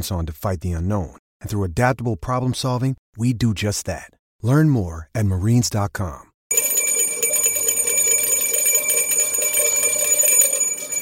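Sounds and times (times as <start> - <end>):
speech: 0.0 - 6.3
bell ringing with bright metallic tone: 6.5 - 11.0.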